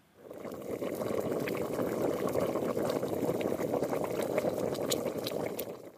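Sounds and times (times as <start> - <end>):
pot bubbling on the boil: 0.0 - 5.9.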